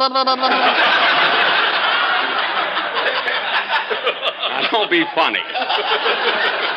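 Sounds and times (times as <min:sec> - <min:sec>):
man's voice imitating a sputtering old car engine: 0:00.0 - 0:00.7
speech: 0:00.0 - 0:01.3, 0:04.0 - 0:06.7
laughter: 0:00.0 - 0:06.7.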